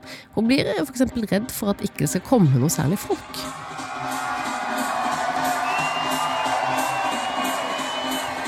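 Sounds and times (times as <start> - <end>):
speech: 0.4 - 3.7
large outdoor concert crowd cheering in a park in front of an amphitheatre stage: 3.1 - 8.4
whoops and shouts from the concert crowd: 3.4 - 8.4.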